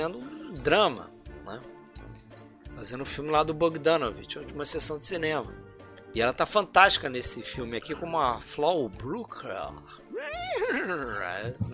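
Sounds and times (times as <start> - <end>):
speech: 0.0 - 1.8, 2.8 - 11.7
human voice imitating a horse whinny: 10.1 - 11.4.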